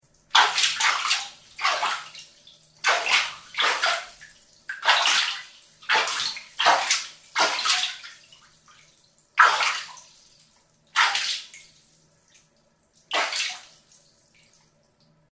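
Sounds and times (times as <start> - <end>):
playing with bath water splashing in a bathtub: 0.0 - 15.2.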